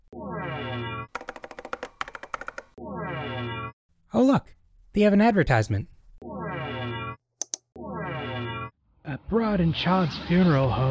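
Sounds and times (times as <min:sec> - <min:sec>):
computer keyboard typing: 0:01.1 - 0:02.8, 0:07.4 - 0:07.7
speech: 0:04.1 - 0:05.9, 0:09.6 - 0:10.8.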